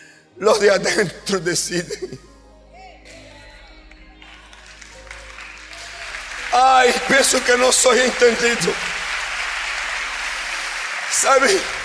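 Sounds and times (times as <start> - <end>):
speech: 0.4 - 2.3, 6.6 - 9.0, 11.2 - 11.8
audience applauding: 3.8 - 11.8.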